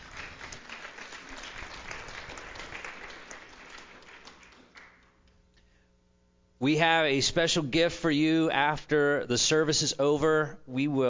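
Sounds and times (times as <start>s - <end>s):
crowd at a church service applauding: 0.0s - 5.3s
speech: 6.6s - 11.0s.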